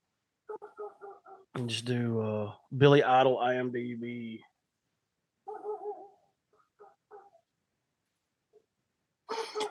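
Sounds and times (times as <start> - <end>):
dogs barking outside while playing: 0.5 - 1.6, 5.4 - 7.5
speech: 0.8 - 4.5.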